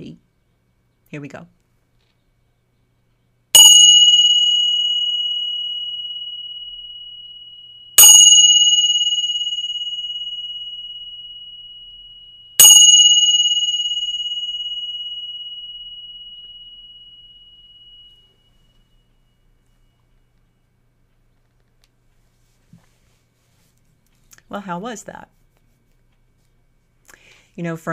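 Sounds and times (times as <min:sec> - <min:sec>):
speech: 0:01.1 - 0:01.6, 0:24.5 - 0:25.4, 0:27.6 - 0:27.9
bell ringing: 0:03.6 - 0:20.0.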